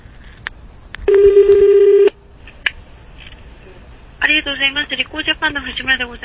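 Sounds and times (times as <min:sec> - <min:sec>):
phone dialing beeps: 0:01.1 - 0:02.1
speech: 0:04.4 - 0:06.2.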